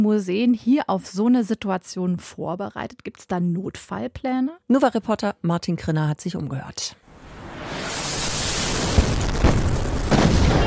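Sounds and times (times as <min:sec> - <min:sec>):
speech: 0:00.0 - 0:07.0
missile explosions booming: 0:07.2 - 0:10.6.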